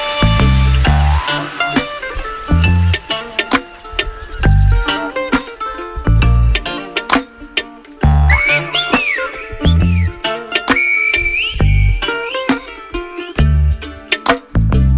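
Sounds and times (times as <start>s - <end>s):
layered instruments: 0.0s - 14.9s
steady thumping bass beat of a 2012 song: 0.2s - 1.3s, 2.5s - 3.2s, 4.4s - 4.9s, 6.0s - 6.8s, 8.0s - 10.3s, 11.2s - 12.2s, 13.4s - 13.9s, 14.6s - 14.9s
silbo whistled form of Spanish in gliding tones: 8.2s - 12.2s.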